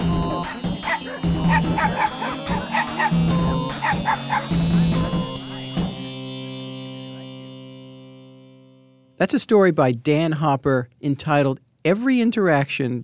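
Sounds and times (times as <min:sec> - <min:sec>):
dog barking and yipping excitedly: 0:00.0 - 0:06.0
speech: 0:09.2 - 0:13.0.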